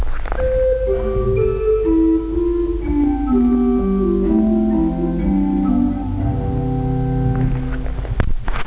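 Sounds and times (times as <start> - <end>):
organ Gedeckt 8 stop: 0.4 - 8.1.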